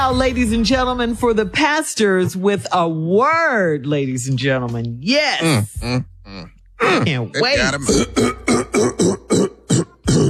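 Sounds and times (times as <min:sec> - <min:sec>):
speech: 0:00.0 - 0:09.4
person clearing throat with a drawn-out groan: 0:05.4 - 0:10.2.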